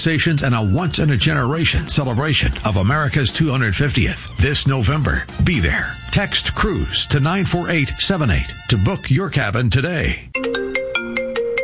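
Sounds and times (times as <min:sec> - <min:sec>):
speech: 0:00.0 - 0:10.8
cell phone ringtone with bright electronic melody: 0:10.4 - 0:11.6.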